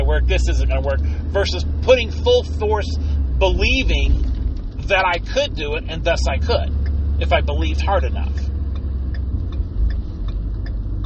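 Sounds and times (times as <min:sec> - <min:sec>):
truck engine idling: 0:00.0 - 0:11.0
speech: 0:00.2 - 0:08.5
faint regular ticking: 0:06.1 - 0:11.0.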